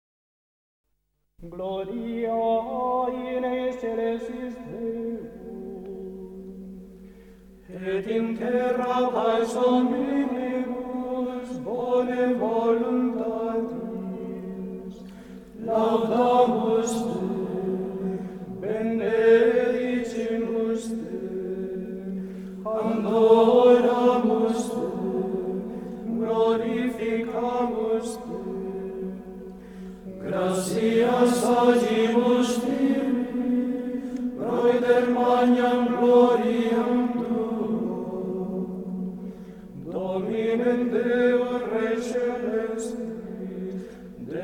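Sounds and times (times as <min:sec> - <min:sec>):
Gregorian chant vocal music: 0:01.4 - 0:07.0, 0:07.6 - 0:44.4.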